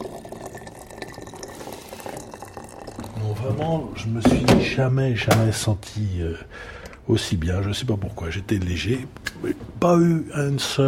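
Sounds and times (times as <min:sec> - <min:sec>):
water poured into a herbal decoction: 0:00.0 - 0:03.9
speech: 0:03.2 - 0:10.8.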